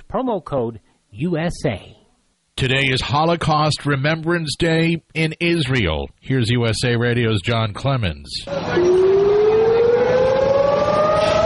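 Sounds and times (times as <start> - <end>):
speech: 0.1 - 2.0, 2.6 - 8.9
civil defense siren wailing: 8.5 - 11.4.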